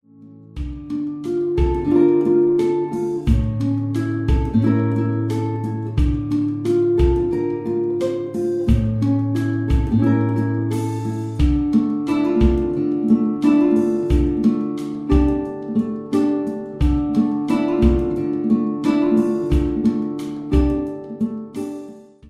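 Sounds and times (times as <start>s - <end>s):
laid back guitars: 0.4s - 22.2s.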